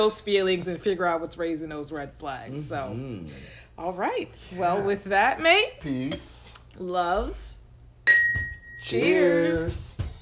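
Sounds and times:
speech: 0:00.0 - 0:07.5, 0:08.1 - 0:09.9
glasses clinking in a toast: 0:08.1 - 0:09.1.

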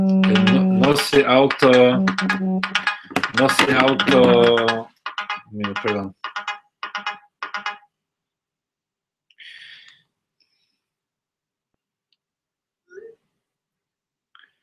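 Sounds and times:
phone ringtone ringing: 0:00.2 - 0:07.9
speech: 0:00.9 - 0:04.9, 0:05.5 - 0:06.2.

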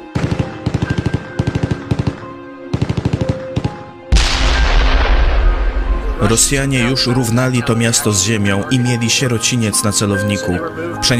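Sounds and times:
rapid machine gun fire in Ukraine heard over a phone call: 0:00.2 - 0:05.6
heavy roaring blast: 0:04.1 - 0:07.3
speech: 0:06.2 - 0:11.1.

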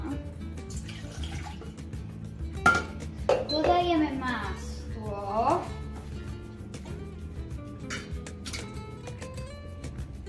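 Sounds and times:
water pouring into a metal cooking pot: 0:00.6 - 0:02.0
metal pot clatter: 0:02.6 - 0:03.8, 0:07.8 - 0:08.8
speech: 0:03.5 - 0:04.6, 0:05.4 - 0:05.8.

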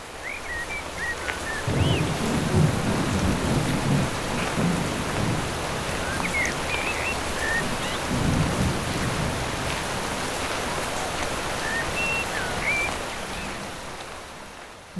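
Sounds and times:
birds chirping faintly: 0:00.0 - 0:02.2, 0:05.9 - 0:08.3, 0:11.4 - 0:13.8
steady heavy rain hissing: 0:00.0 - 0:14.9
deep thunder rolling: 0:01.7 - 0:10.0.

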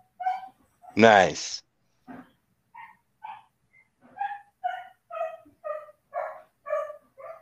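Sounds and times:
speech: 0:01.0 - 0:01.6
dog barking with sharp high-pitched yips: 0:02.8 - 0:03.5, 0:04.2 - 0:07.4.

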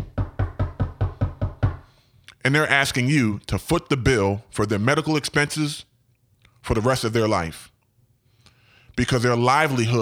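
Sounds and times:
firm knocking on a door: 0:00.0 - 0:01.9
speech: 0:02.4 - 0:05.9, 0:06.6 - 0:07.7, 0:09.0 - 0:10.0.

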